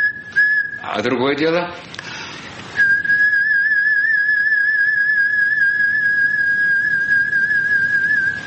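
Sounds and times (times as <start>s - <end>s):
long steady human lip whistle on one pitch: 0.0s - 0.9s, 2.8s - 8.4s
speech: 0.9s - 2.0s.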